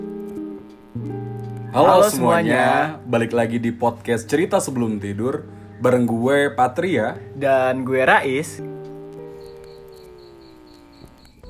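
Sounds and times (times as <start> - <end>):
crickets chirping: 0.0 - 11.4
low droning hum: 1.5 - 7.8
speech: 1.7 - 8.7.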